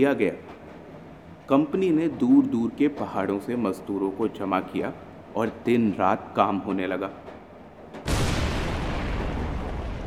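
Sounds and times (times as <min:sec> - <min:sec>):
speech: 0:00.0 - 0:00.5, 0:01.5 - 0:07.2
low rumble: 0:08.1 - 0:10.0
rock-blasting explosion echoing through hills: 0:08.1 - 0:10.0.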